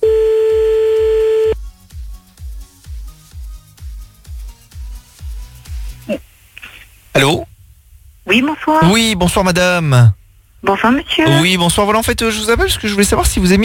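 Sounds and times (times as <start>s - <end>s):
telephone line tones on an outgoing call: 0.0s - 1.6s
speech: 8.3s - 13.6s.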